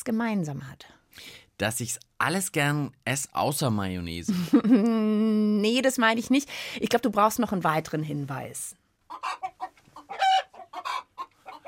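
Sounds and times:
speech: 0:00.0 - 0:09.5
laughter: 0:04.3 - 0:05.0
hen clucking: 0:09.1 - 0:11.6.

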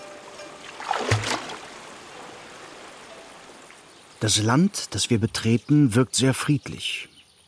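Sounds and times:
gently lapping water: 0:00.0 - 0:04.2
water splashing against a ferry boat nearing a landing stage: 0:00.6 - 0:02.0
speech: 0:04.2 - 0:07.1.

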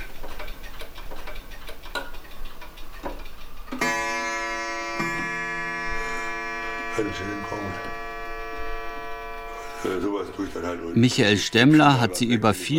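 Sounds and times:
over 120 old pendulum clocks ticking out of step: 0:00.0 - 0:12.7
sustained ringing clock chime with rich harmonics: 0:03.7 - 0:12.5
speech: 0:07.0 - 0:08.1, 0:09.8 - 0:12.7.

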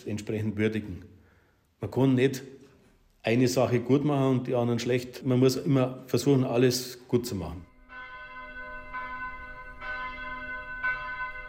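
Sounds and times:
speech: 0:00.0 - 0:01.2, 0:01.8 - 0:02.6, 0:03.2 - 0:07.7
church bells striking in city centre: 0:07.6 - 0:11.4.

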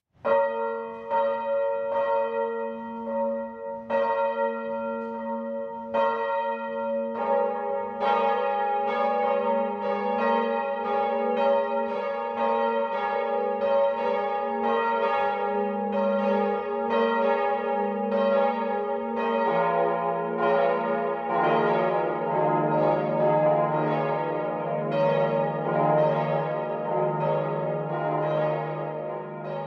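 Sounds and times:
church bells of a Catholic parish church in Upper Franconia ringing the midday peal: 0:00.2 - 0:29.6.

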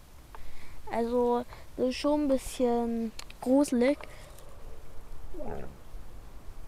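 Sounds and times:
speech: 0:01.0 - 0:04.2, 0:05.4 - 0:05.8
short high dog whine or yelp: 0:05.3 - 0:05.8.

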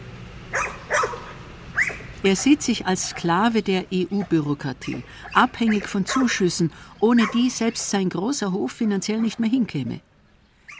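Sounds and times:
hunting dog barking: 0:00.5 - 0:02.1, 0:04.2 - 0:06.4, 0:07.2 - 0:07.6
speech: 0:02.2 - 0:10.1.

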